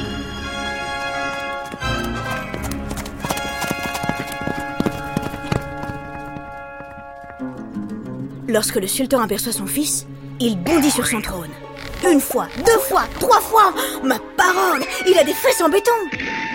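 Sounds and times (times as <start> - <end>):
team of harnessed horses' hooves clip-clopping: 0.8 - 8.2
speech: 8.5 - 16.4.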